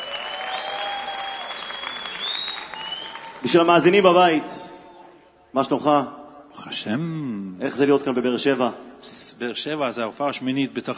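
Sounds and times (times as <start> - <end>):
audience clapping: 0.0 - 4.0
faint thin high whistle-like tones: 0.5 - 3.2
speech: 3.4 - 4.6, 5.5 - 10.9.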